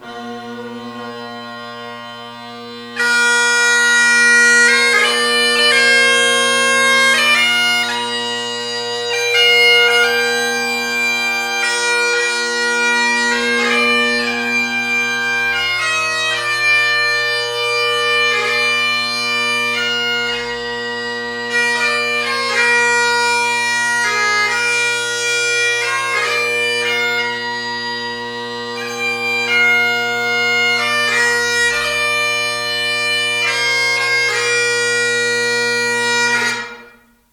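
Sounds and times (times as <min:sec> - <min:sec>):
bagpipe flat bass: 0:00.0 - 0:37.2.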